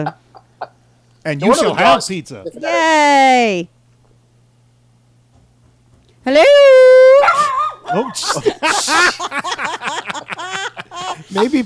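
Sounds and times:
speech: 0.0 - 0.2, 1.2 - 3.8, 6.2 - 6.8, 7.9 - 11.6
tiny dog held on someone's chest yipping and barking: 7.1 - 7.9
laughter: 7.9 - 11.6.

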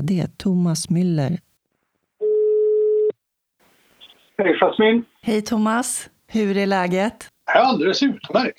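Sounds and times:
speech: 0.0 - 1.5, 4.4 - 8.5
telephone ringback tone while placing a call: 2.2 - 3.1
faint telephone line noise: 3.6 - 5.4.

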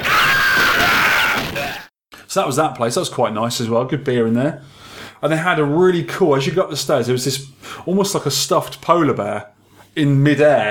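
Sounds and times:
voice imitating an arcade video game character scream: 0.0 - 1.9
speech: 2.3 - 10.7.

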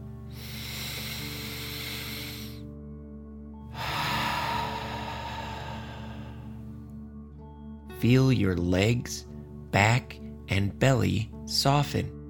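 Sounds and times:
deep breath in, then out through the mouth: 0.1 - 2.8, 3.6 - 6.9
speech: 8.0 - 12.2.

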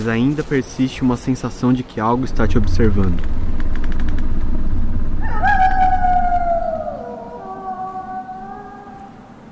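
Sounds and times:
speech: 0.0 - 3.5
strong wind blowing by a dense forest: 2.1 - 8.7
eerie whistling howl: 4.6 - 9.4.

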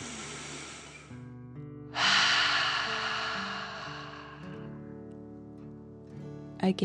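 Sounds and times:
person exhaling forcefully in a dragon-style breath: 0.0 - 1.1, 2.0 - 4.8.

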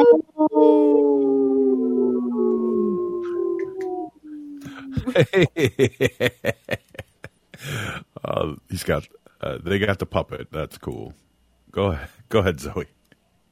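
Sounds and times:
person howling like a wolf: 0.0 - 5.2
breathy laughter: 4.6 - 8.0
speech: 5.2 - 6.8, 8.4 - 13.0.

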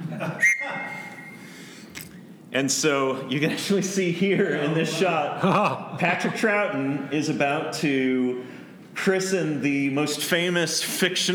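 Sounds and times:
laughter: 0.0 - 1.2, 3.3 - 7.4
life vest whistle blast: 0.4 - 1.5
speech: 2.5 - 11.3.

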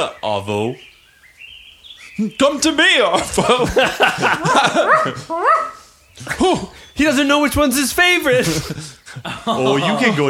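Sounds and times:
speech: 0.0 - 0.9, 2.2 - 10.2
laughter: 2.1 - 10.2
dog yelping with high-pitched barks and whiny cries: 4.6 - 6.0.

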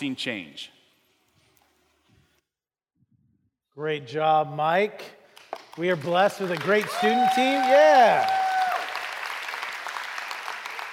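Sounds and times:
speech: 0.0 - 0.8, 3.8 - 5.2, 5.8 - 8.4
sizable audience applauding: 5.8 - 10.9
people cheering: 6.5 - 10.9.

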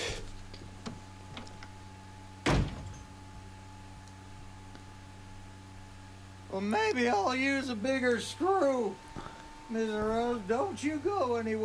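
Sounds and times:
door clicks and rattles as a door is worked open: 0.2 - 1.8, 2.4 - 3.2
speech: 6.6 - 9.1, 9.7 - 11.6.

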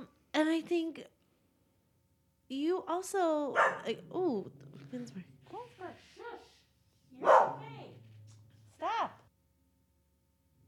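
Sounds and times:
speech: 0.4 - 1.2, 2.5 - 6.5
dog giving short whiny yips: 3.6 - 3.9, 7.2 - 7.9
dog barking loudly: 3.6 - 4.0, 7.2 - 8.0.

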